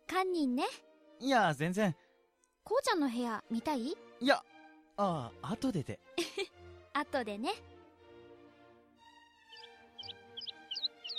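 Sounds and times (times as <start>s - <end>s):
speech: 0.2s - 2.0s, 2.6s - 7.7s
small pet bird chirping: 9.4s - 11.1s.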